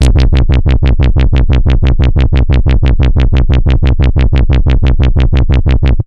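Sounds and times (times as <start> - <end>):
vibration wobble bass: 0.0 - 6.0.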